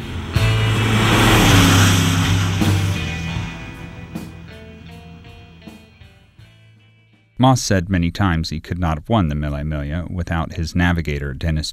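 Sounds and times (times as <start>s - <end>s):
race car engine roaring while accelerating away: 0.0s - 5.8s
speech: 7.4s - 11.7s.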